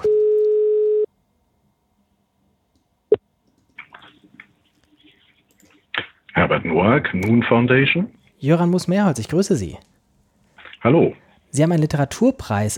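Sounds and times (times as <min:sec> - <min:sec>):
ringback tone of an outgoing phone call: 0:00.0 - 0:01.1
speech: 0:06.4 - 0:09.9, 0:10.8 - 0:12.7.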